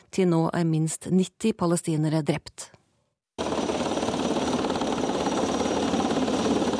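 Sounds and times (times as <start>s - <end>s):
speech: 0.1s - 2.8s
helicopter rotor beating in a rapid steady chop: 3.4s - 6.7s.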